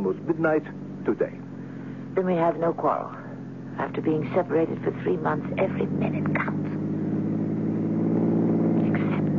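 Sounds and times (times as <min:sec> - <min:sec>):
engine of a chauffeur-driven car rumbling on a drive to Madrid: 0:00.0 - 0:09.3
faint high whine: 0:00.0 - 0:09.3
speech: 0:00.1 - 0:01.5, 0:02.2 - 0:03.2, 0:03.8 - 0:06.5.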